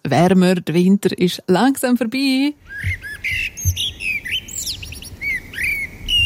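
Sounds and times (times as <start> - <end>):
speech: 0.1 - 3.8
several birds chirping and singing: 2.6 - 6.2.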